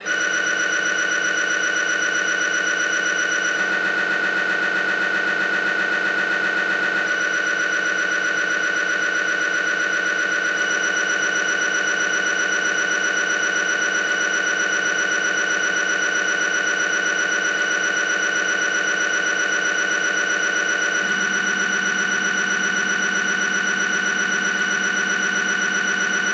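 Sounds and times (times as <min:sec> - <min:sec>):
Siemens 3T Magnetom Prisma Fit whole body MRI scanner: 0:00.0 - 0:26.3.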